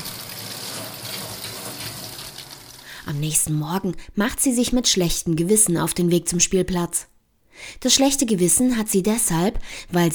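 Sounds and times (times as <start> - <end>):
steady rain pattering on a window: 0.0 - 3.0
speech: 3.1 - 10.1.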